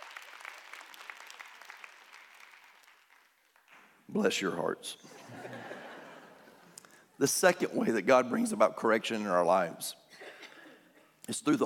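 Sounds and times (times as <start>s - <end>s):
church audience clapping during a sermon: 0.0s - 3.9s
speech: 4.1s - 5.8s, 7.2s - 10.0s, 11.3s - 11.6s
laughter: 5.1s - 6.8s.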